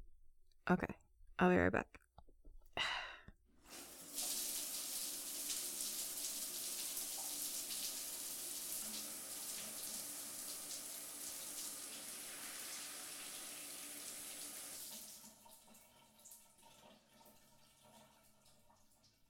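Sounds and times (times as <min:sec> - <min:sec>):
speech: 0:00.7 - 0:02.0
short breathy sigh: 0:02.8 - 0:03.4
shower water running: 0:03.6 - 0:19.2.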